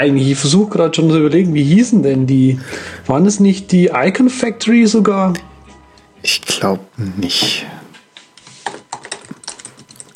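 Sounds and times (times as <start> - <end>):
speech: 0.0 - 5.5, 6.2 - 7.8
typing on a loud computer keyboard: 8.6 - 10.1.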